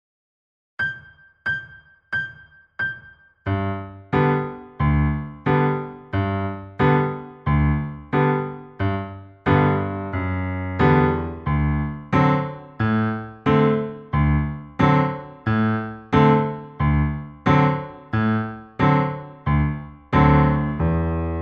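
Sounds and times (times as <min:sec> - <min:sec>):
piano secondo part for practice playback: 0:00.8 - 0:21.4.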